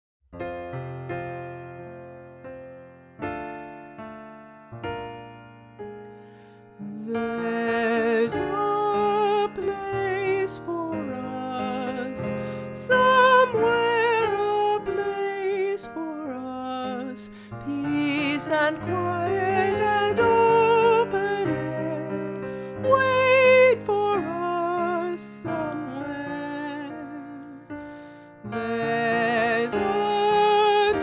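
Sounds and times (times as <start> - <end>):
piano: 0.3 - 31.0
soprano singing: 6.7 - 31.0.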